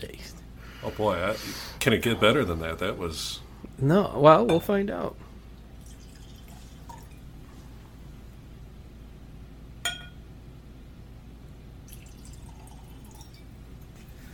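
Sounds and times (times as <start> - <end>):
low hum: 0.0 - 14.3
speech: 0.8 - 5.2
glass clink: 9.8 - 10.2, 11.9 - 13.6.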